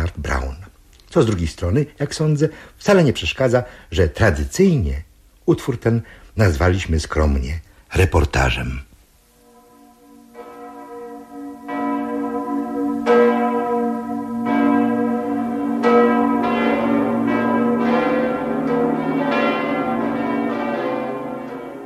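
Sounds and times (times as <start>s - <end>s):
speech: 1.2s - 8.9s
church bells in Europe ringing: 9.4s - 21.8s.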